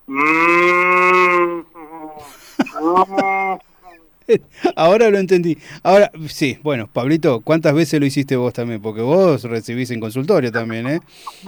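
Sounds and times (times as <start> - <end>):
person imitating cow mooing: 0.1 - 3.6
laughter: 1.8 - 5.0, 10.4 - 11.4
speech: 4.3 - 11.4.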